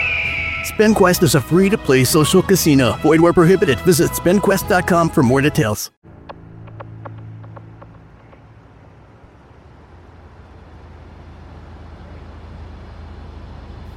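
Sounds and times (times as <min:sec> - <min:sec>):
speech: 0:00.7 - 0:06.0
steady low hum inside a parked car: 0:06.1 - 0:13.9
faint clicking taps: 0:06.3 - 0:08.5.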